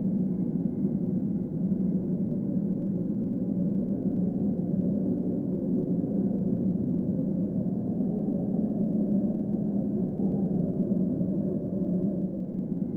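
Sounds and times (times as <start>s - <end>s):
eerie low wind: 0.0s - 12.9s.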